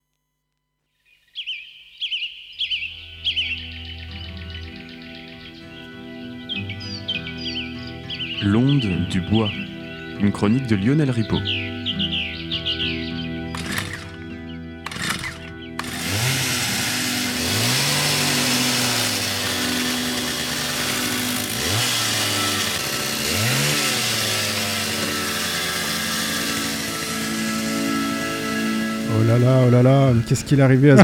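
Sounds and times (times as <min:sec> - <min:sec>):
birds chirping: 0:00.9 - 0:31.0
speech: 0:08.4 - 0:09.6, 0:10.2 - 0:11.6, 0:29.7 - 0:31.0
chainsaw engine starting, idling and revving: 0:13.5 - 0:31.0.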